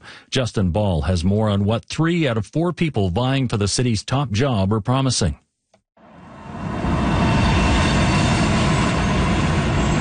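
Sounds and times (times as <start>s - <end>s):
speech: 0.3s - 5.4s
light rail train rumbling: 6.4s - 9.9s.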